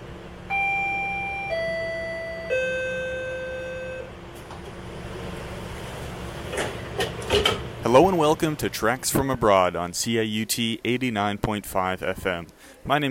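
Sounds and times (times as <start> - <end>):
commuter train doors closing with hissing and clattering: 0.0 - 9.6
three-note descending electronic door chime of a Toronto GO commuter train: 0.5 - 4.1
speech: 7.9 - 13.1.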